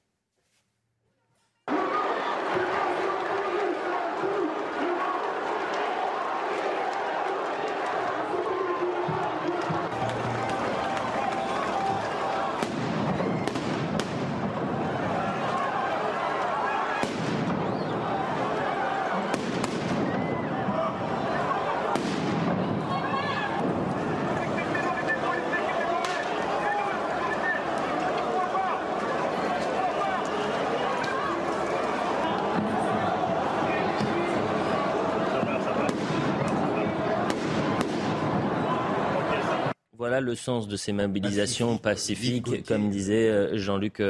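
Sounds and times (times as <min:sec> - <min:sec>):
protest crowd roaring and shouting at a street demonstration: 0:01.7 - 0:39.8
speech: 0:40.2 - 0:44.0.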